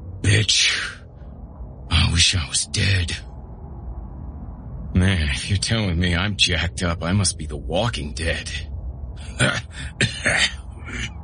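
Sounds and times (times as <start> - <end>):
speech: 0.2 - 1.0, 2.2 - 3.3, 5.0 - 8.7, 9.3 - 11.2
man coughing: 9.2 - 11.1
man clearing his throat: 9.3 - 11.1.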